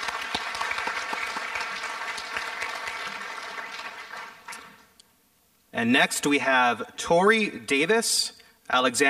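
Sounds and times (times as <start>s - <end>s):
crowd applauding with many hands clapping: 0.0s - 4.9s
speech: 5.8s - 9.0s.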